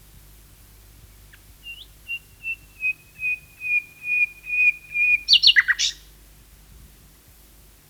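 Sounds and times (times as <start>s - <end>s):
Common nightingale song: 1.1s - 6.1s.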